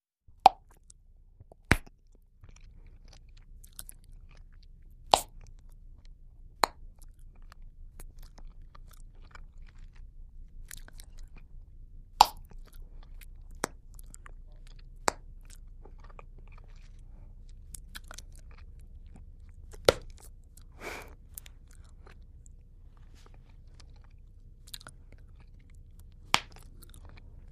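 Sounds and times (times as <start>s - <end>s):
gum chewing and popping: 0.4s - 27.5s.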